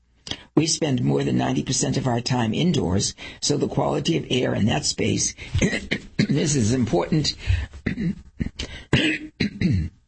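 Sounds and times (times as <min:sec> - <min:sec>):
speech: 0:00.6 - 0:09.7
person coughing: 0:05.5 - 0:10.0.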